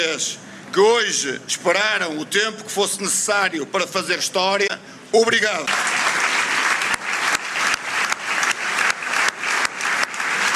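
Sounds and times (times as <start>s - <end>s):
speech: 0.0s - 6.0s
hundreds of people applauding: 5.7s - 10.5s.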